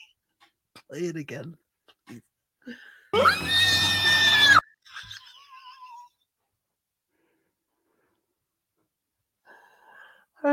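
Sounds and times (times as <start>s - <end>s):
speech: 0.9s - 3.7s
loud shrill pig-like human squeal: 3.2s - 6.1s.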